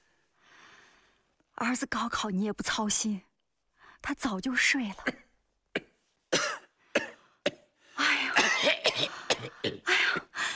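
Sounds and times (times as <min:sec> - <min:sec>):
speech: 0:01.6 - 0:03.3, 0:04.0 - 0:05.2
sharp coughs and harsh raspy hacking coughs: 0:05.8 - 0:07.7, 0:08.3 - 0:09.9.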